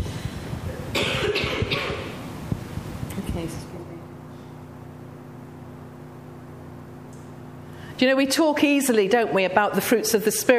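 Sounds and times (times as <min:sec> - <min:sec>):
throat-clearing rasp: 0:00.9 - 0:02.1
person coughing: 0:00.9 - 0:02.2
speech: 0:08.0 - 0:10.5.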